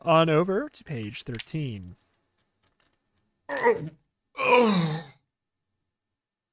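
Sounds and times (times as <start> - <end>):
speech: 0.0 - 2.0, 3.5 - 5.2
seasick person groaning in a bobbing lifeboat: 3.5 - 5.2.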